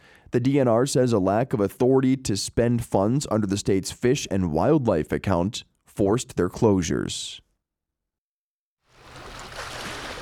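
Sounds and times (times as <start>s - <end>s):
speech: 0.3s - 7.4s
water washing gently against a lakeshore: 8.9s - 10.1s.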